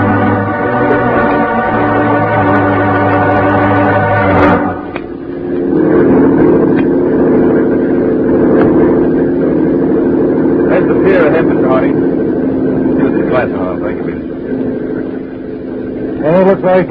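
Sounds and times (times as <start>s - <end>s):
speedboat engine droning on water: 0.0s - 16.8s.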